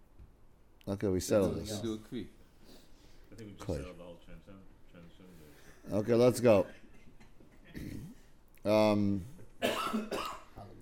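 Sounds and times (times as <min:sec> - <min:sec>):
speech: 0:00.9 - 0:02.4, 0:03.3 - 0:06.8, 0:07.8 - 0:10.3
rough throat-clearing hack: 0:07.7 - 0:08.2
loud cough: 0:09.6 - 0:10.6.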